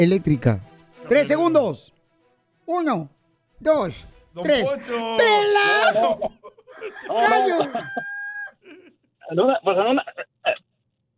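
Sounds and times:
speech: 0.0s - 2.0s, 2.7s - 8.1s, 9.3s - 10.6s
laughter: 4.6s - 8.9s, 9.5s - 10.3s
rooster crow sound effect: 6.7s - 8.6s.

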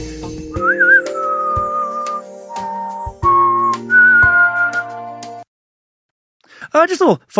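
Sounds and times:
loud whistled melody of long held notes: 0.0s - 5.4s
speech: 6.8s - 7.3s.

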